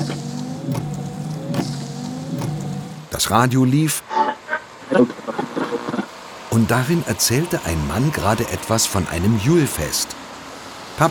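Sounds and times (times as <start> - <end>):
car windshield wipers sweeping: 0.0 - 3.4
low hum of a car interior: 0.0 - 4.0
speech: 3.2 - 4.2, 4.9 - 5.4, 6.5 - 10.2.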